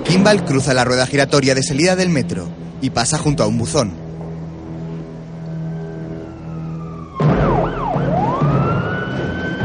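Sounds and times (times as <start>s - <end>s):
speech: 0.1s - 4.0s
police car sirens wailing: 4.4s - 9.6s.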